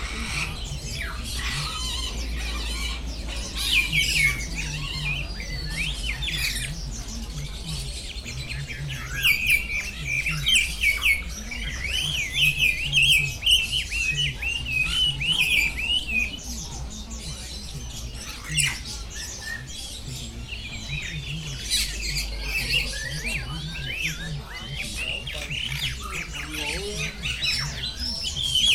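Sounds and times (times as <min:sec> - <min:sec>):
bird warbling trilled song in a bird garden: 0:00.0 - 0:28.7.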